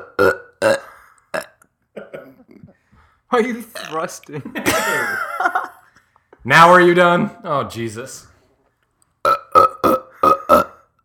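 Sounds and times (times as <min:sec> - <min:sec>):
loud guttural burps: 0:00.0 - 0:02.7, 0:09.2 - 0:11.0
speech: 0:03.4 - 0:05.7, 0:06.4 - 0:08.3
laughter: 0:04.3 - 0:06.1.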